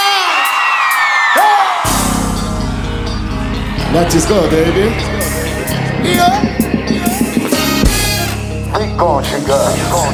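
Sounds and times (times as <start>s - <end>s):
large crowd of fans screaming and cheering: 0.0s - 8.6s
steady pounding rumble: 2.3s - 8.5s
speech: 4.0s - 6.7s, 9.0s - 10.1s.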